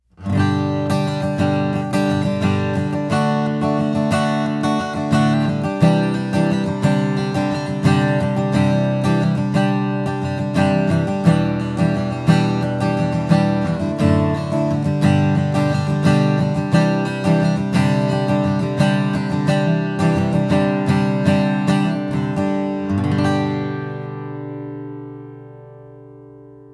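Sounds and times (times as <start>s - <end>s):
Taylor BE K24ce guitar strumming: 0.0s - 26.7s.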